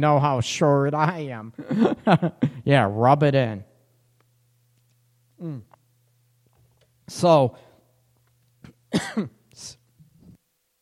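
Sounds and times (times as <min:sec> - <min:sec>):
speech: 0:00.0 - 0:03.7, 0:05.4 - 0:05.7, 0:07.1 - 0:07.6, 0:08.9 - 0:09.8
person coughing after water went down the wrong way: 0:05.4 - 0:05.8, 0:08.6 - 0:09.4.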